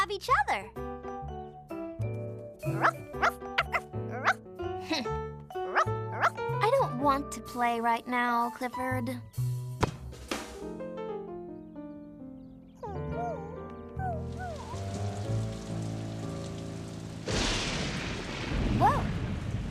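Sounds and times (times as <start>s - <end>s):
gentle music score: 0.0s - 17.3s
speech: 0.2s - 0.8s, 7.1s - 9.5s
steady rain: 14.3s - 19.6s
loud sudden crack of thunder: 14.8s - 19.6s.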